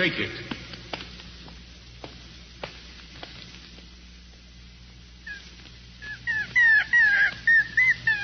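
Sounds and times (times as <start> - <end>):
speech: 0.0 - 0.5
puppy whimpering aboard a ship at sea: 6.0 - 8.2.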